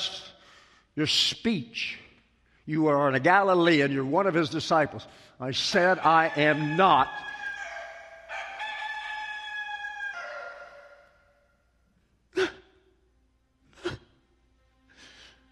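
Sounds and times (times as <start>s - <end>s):
speech: 1.0s - 2.0s, 2.7s - 7.3s
rooster crowing: 5.8s - 11.4s.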